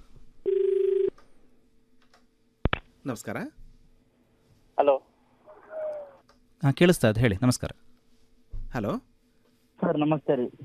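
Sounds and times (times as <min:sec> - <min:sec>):
telephone ring of an incoming call to a farmers' radio phone-in: 0:00.5 - 0:01.1
speech: 0:03.0 - 0:03.6, 0:04.8 - 0:05.1, 0:06.6 - 0:07.9, 0:08.7 - 0:09.1, 0:09.9 - 0:10.6.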